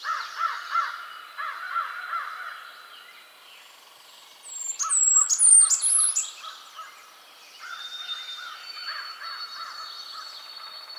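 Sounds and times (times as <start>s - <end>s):
Blackburnian Warbler Setophaga fusca calling: 0.0s - 10.9s.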